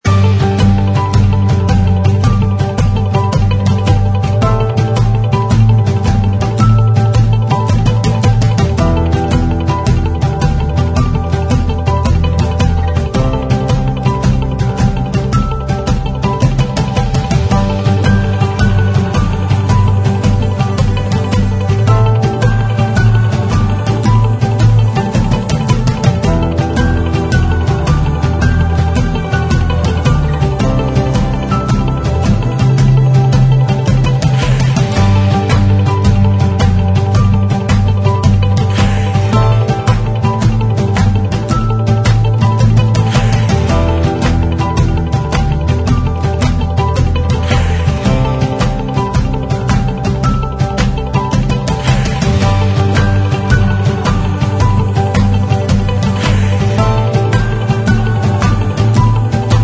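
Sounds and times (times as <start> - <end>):
inspiring motivational corporate music loop: 0.0 - 59.6.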